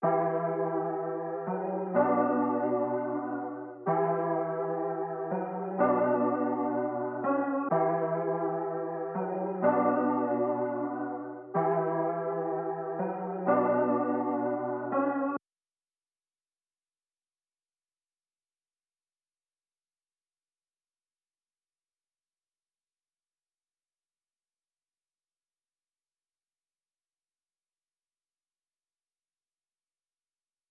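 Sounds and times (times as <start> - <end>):
piano in B minor: 0.0 - 15.4.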